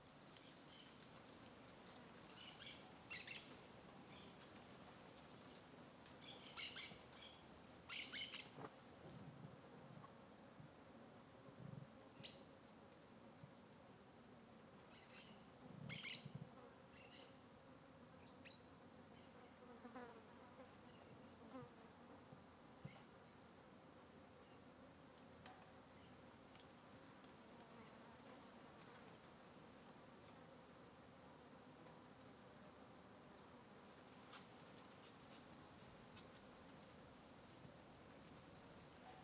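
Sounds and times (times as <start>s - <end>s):
discreet crickets in a sparse forest: 0.2s - 39.2s.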